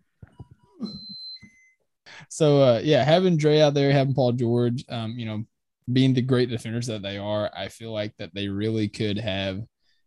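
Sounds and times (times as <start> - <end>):
high-pitched electronic beeping tones: 0.8 - 1.8
speech: 2.3 - 9.7.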